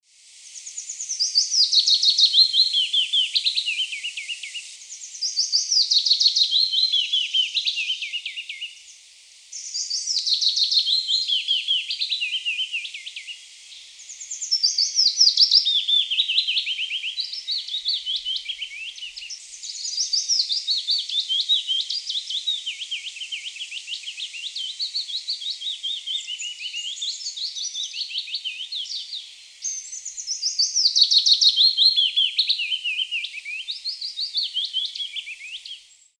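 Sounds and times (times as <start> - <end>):
willow warbler: 0.3 - 36.1.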